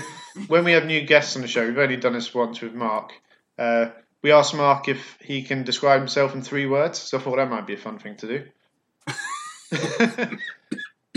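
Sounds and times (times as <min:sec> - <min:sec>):
laughter: 0:00.0 - 0:00.7, 0:09.1 - 0:10.4
speech: 0:00.5 - 0:10.8
person coughing harshly: 0:09.1 - 0:11.1.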